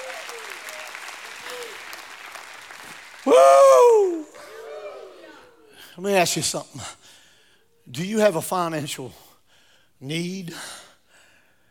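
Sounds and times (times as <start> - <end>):
audience clapping: 0.0 - 5.5
scattered voices calling out and cheering: 0.0 - 5.8
speech: 3.2 - 3.7, 6.0 - 7.2, 7.9 - 9.2, 10.0 - 10.8.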